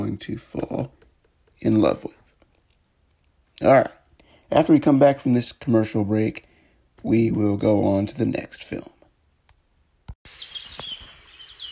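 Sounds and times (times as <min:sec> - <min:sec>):
speech: 0:00.2 - 0:01.0, 0:01.6 - 0:02.2, 0:03.6 - 0:09.0
chorus of small birds chirping and tweeting: 0:10.2 - 0:11.7.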